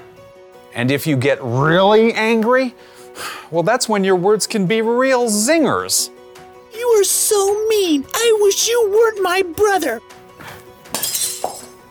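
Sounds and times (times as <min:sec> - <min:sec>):
speech: 0:00.8 - 0:06.2, 0:06.9 - 0:10.2
glass shattering: 0:10.9 - 0:11.8.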